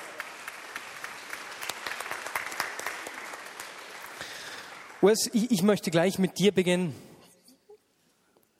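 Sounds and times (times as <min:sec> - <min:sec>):
crowd applauding: 0:00.0 - 0:05.4
speech: 0:05.0 - 0:07.1.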